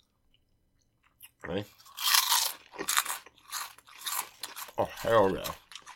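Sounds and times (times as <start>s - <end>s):
crunching on Flamin' Hot pork rinds: 1.3s - 5.9s
speech: 1.4s - 1.9s, 4.8s - 5.6s.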